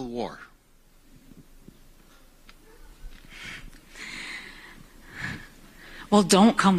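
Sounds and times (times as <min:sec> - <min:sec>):
speech: 0:00.1 - 0:00.5, 0:06.1 - 0:06.7
woman breathing uneasily into a microphone: 0:03.3 - 0:06.1.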